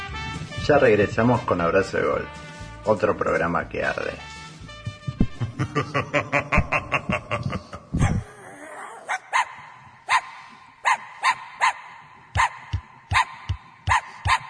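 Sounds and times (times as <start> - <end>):
speech: 0.7 - 4.3, 5.8 - 6.6
laughter: 5.3 - 8.3
small dogs barking with sharp high-pitched yips: 8.0 - 14.4.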